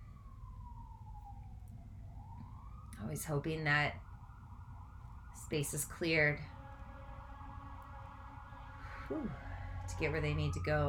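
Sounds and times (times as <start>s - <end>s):
emergency vehicle siren passing by: 0.0s - 10.8s
steady low rumble of traffic: 0.0s - 10.8s
speech: 3.0s - 4.0s, 5.4s - 6.6s, 9.1s - 10.8s.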